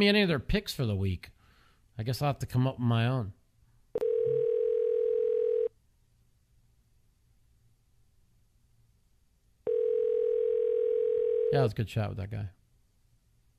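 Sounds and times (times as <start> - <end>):
speech: 0.0 - 1.4, 2.0 - 3.4, 11.5 - 12.6
telephone dial tone as a phone call connects: 4.0 - 5.7, 9.7 - 11.5.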